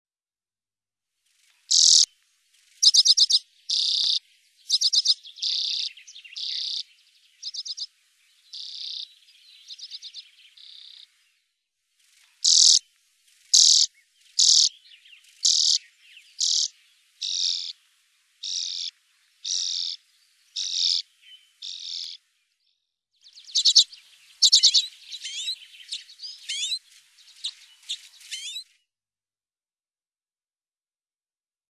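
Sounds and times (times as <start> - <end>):
birds: 1.2 - 28.9
common redpoll calling: 1.7 - 2.1, 2.8 - 11.1, 12.4 - 12.8, 13.5 - 17.8, 18.4 - 22.2, 23.3 - 28.7.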